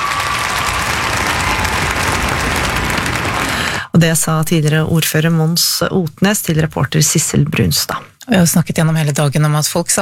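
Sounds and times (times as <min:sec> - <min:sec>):
crowd applauding outdoors at a statue unveiling: 0:00.0 - 0:03.8
speech: 0:04.0 - 0:09.9.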